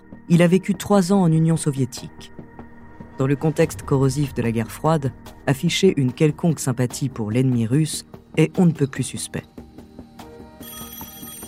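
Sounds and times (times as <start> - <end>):
speech: 0.3 - 2.4, 3.2 - 9.5
telephone bell ringing: 10.5 - 11.4.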